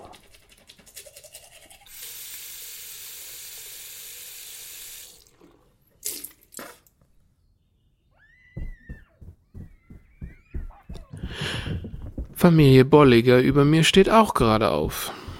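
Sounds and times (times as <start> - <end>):
toothbrush bristles scrubbing teeth: 0.0 - 2.0
tap water running: 1.0 - 6.6
faint squeaky chirps: 7.2 - 11.2
speech: 12.4 - 15.2.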